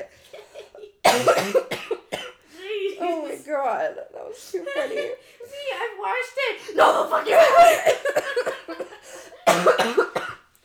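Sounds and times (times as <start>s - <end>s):
person coughing: 0.4s - 2.4s, 7.8s - 10.5s
speech: 1.2s - 1.8s, 3.5s - 8.0s.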